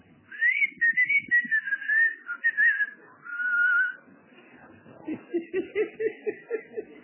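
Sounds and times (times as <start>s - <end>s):
person whistling a wavering melodic tune to call someone outside: 0.3s - 2.9s
laughter: 5.0s - 7.0s.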